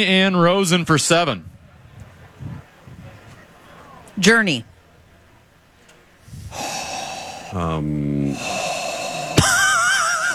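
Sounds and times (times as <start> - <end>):
speech: 0.0 - 1.5, 4.2 - 4.7, 7.5 - 8.6
laughter: 0.7 - 10.3
heavy breathing right up against the microphone: 1.4 - 4.2, 6.1 - 10.3
voiced gasp: 6.2 - 10.3.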